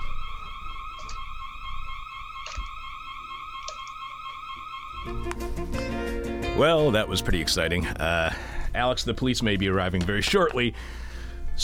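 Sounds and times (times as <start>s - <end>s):
electronic alarm blaring in a bar downstairs: 0.0s - 7.7s
speech: 5.0s - 11.0s.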